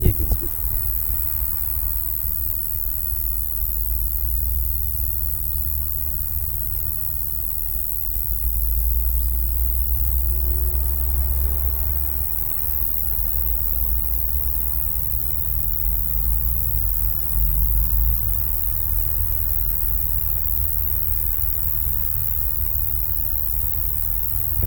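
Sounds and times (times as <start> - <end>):
Roeseliana roeselii stridulating: 0.0 - 24.6.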